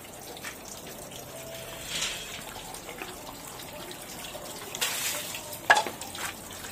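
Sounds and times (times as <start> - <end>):
running water rinsing hands: 0.0 - 6.7.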